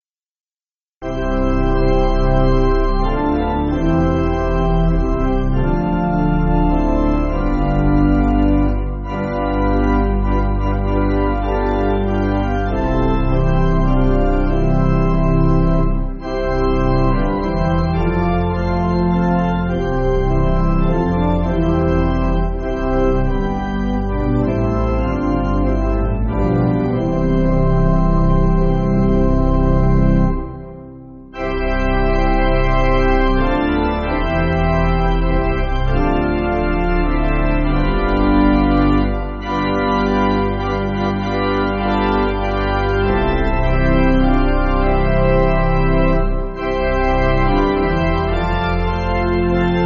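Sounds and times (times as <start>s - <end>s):
pipe organ church backing music: 1.0s - 49.8s.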